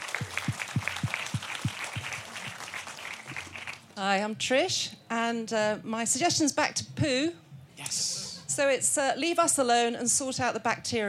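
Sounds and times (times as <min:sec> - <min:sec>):
sharp claps: 0:00.0 - 0:03.8
audience applause: 0:00.0 - 0:03.9
speech: 0:04.0 - 0:08.0, 0:08.6 - 0:11.0.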